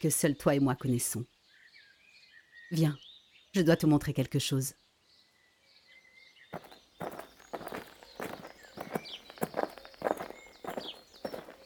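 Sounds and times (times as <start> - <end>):
speech: 0.0 - 1.4, 2.7 - 4.8, 6.5 - 7.3
footsteps walking through a forest: 6.6 - 11.6.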